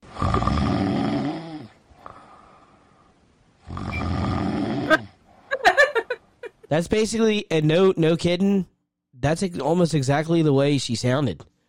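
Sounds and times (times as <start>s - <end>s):
raspy snoring with a whistling exhale: 0.1s - 2.7s, 3.6s - 5.2s
speech: 6.7s - 11.5s.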